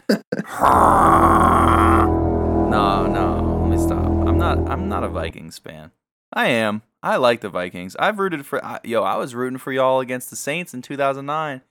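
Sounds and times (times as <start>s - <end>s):
man imitating a deep Viking war horn with his voice: 0.5s - 5.3s
speech: 5.3s - 11.6s.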